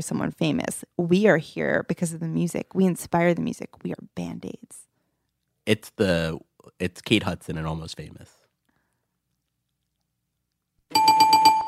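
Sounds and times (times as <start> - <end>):
speech: 0.0 - 4.8, 5.6 - 8.4
bell rung for a correct answer: 10.9 - 11.6.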